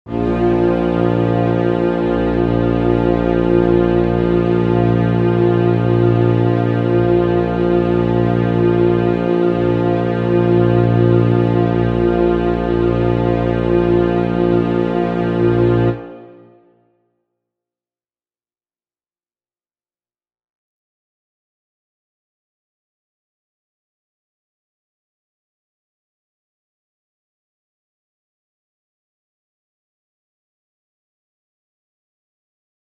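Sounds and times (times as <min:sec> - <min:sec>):
low Bb tuning drone: 0:00.1 - 0:16.5.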